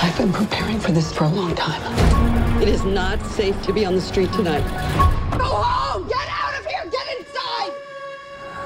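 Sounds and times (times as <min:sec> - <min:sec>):
speech: 0:00.2 - 0:06.1
woman screaming in horror film: 0:05.4 - 0:07.7.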